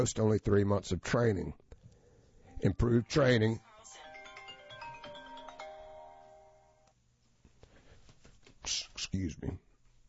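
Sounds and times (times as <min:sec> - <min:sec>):
speech: 0:00.0 - 0:01.6, 0:02.6 - 0:04.0
phone ringtone electronic melody: 0:03.0 - 0:06.8.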